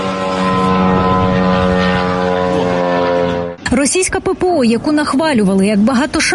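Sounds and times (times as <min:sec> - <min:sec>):
drone propeller buzzing: 0:00.0 - 0:04.2
speech: 0:03.8 - 0:06.3.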